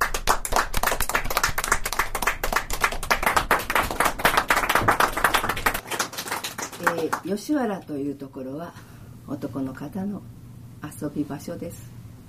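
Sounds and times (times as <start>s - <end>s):
audience clapping in welcome of a performer: 0.0s - 7.3s
speech: 7.0s - 10.3s, 11.0s - 11.9s.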